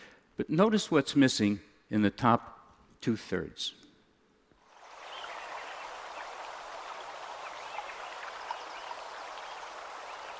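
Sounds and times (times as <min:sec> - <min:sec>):
speech: 0:00.4 - 0:03.8
stream water flowing in a logged forest: 0:04.6 - 0:10.3.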